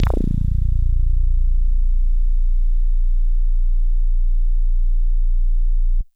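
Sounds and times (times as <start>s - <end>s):
DX100 synth bass note A#6: 0.0s - 6.0s.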